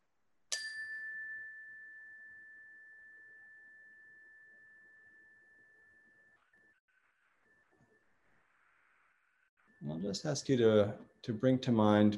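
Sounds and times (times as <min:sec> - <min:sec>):
meditation bell ringing: 0:00.5 - 0:06.4
speech: 0:09.8 - 0:12.1.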